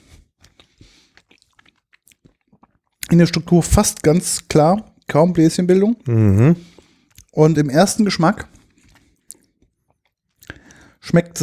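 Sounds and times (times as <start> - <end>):
person chewing a gin tonic flavoured fruit gum: 0.4 - 3.3, 8.5 - 10.8
speech: 3.1 - 6.7, 7.4 - 8.5, 11.1 - 11.4.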